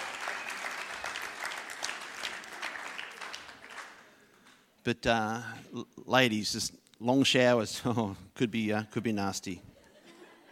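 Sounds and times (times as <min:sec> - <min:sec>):
audience applause: 0:00.0 - 0:04.1
speech: 0:04.8 - 0:09.7
laughter: 0:09.7 - 0:10.5.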